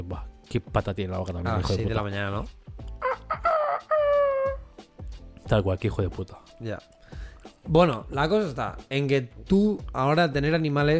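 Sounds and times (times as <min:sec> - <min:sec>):
speech: 0:00.0 - 0:02.6, 0:05.5 - 0:07.0, 0:07.6 - 0:10.9
rooster crowing: 0:03.0 - 0:04.6.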